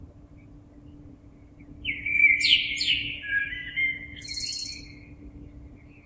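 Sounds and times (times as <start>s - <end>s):
common blackbird singing: 1.8s - 5.0s.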